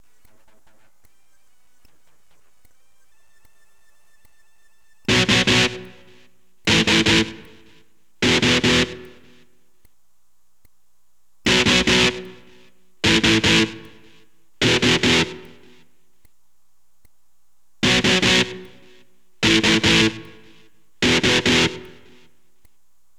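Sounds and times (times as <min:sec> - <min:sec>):
electric guitar power chord: 0:05.1 - 0:09.4, 0:11.5 - 0:15.7, 0:17.8 - 0:22.3.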